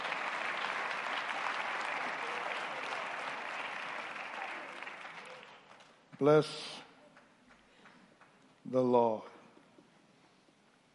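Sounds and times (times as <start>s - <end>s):
sustained applause from a large audience for a choir: 0.0s - 6.0s
speech: 6.2s - 6.8s, 8.7s - 9.3s.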